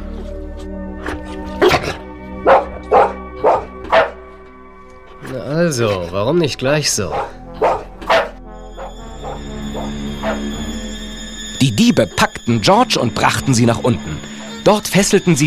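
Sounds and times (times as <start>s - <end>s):
dog barking: 1.0s - 4.2s, 7.1s - 10.6s
speech: 5.6s - 7.4s, 11.6s - 15.4s.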